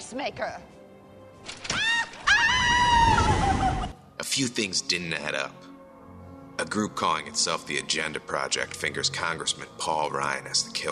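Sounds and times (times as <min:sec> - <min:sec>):
speech: 0:00.1 - 0:00.8, 0:04.2 - 0:05.7, 0:06.6 - 0:10.9
woman screaming as she falls off a cliff: 0:01.7 - 0:04.0.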